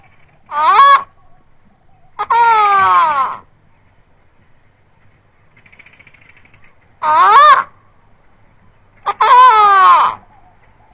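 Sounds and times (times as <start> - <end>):
eagle calling: 0.0 - 3.6, 6.0 - 8.0, 9.0 - 10.9.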